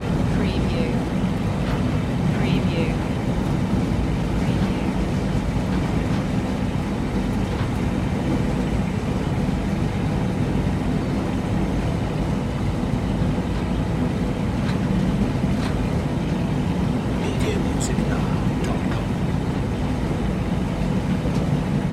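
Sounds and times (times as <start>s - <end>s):
ferry engine running in engine compartment: 0.0s - 21.9s.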